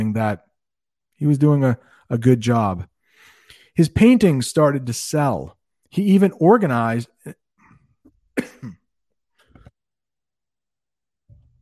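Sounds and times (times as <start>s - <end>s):
speech: 0.0s - 0.5s, 1.2s - 2.9s, 3.8s - 7.4s
throat clearing: 8.4s - 8.8s
person coughing raspily: 8.4s - 8.9s.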